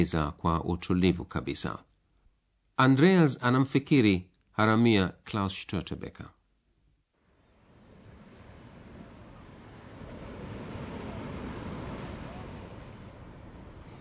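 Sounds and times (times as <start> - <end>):
speech: 0.0 - 1.9, 2.8 - 6.4
sea waves rushing against the rocks: 7.5 - 13.9.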